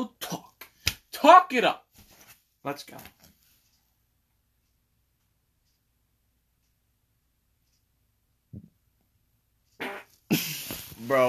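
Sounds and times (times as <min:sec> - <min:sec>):
speech: 0:01.2 - 0:01.8, 0:02.6 - 0:03.2, 0:09.8 - 0:11.2
man farting: 0:09.8 - 0:10.7.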